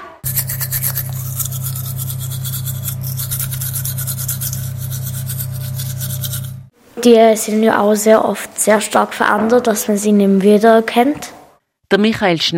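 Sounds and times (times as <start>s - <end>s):
toothbrush scrubbing, strongly altered: 0.2s - 6.7s
speech: 7.0s - 11.3s, 11.9s - 12.5s.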